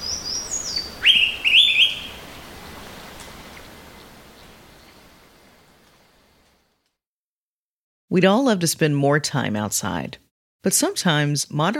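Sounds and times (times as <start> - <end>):
Araripe manakin calling: 0.0 - 5.2
soft steady hiss: 0.0 - 6.8
speech: 8.1 - 11.7.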